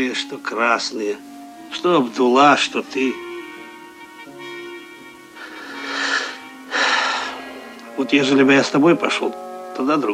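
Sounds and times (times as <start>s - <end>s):
speech: 0.0s - 3.3s, 8.0s - 10.1s
person blowing nose into a handkerchief: 5.4s - 7.7s.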